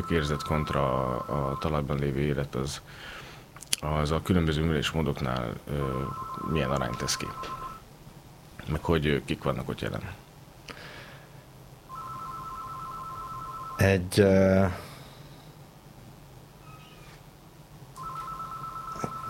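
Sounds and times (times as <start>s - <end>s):
telephone ringing with electronic tones: 0.0s - 1.8s, 5.8s - 7.8s, 11.9s - 13.9s, 18.0s - 19.2s
speech: 0.0s - 3.2s, 3.8s - 7.6s, 8.6s - 10.2s, 13.8s - 14.9s.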